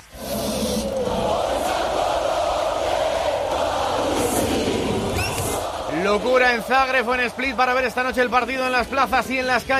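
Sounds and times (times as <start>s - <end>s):
people shouting in a crowd: 0.9s - 8.5s
crowd singing patriotic celebration chant: 0.9s - 8.7s
speech: 6.2s - 9.7s.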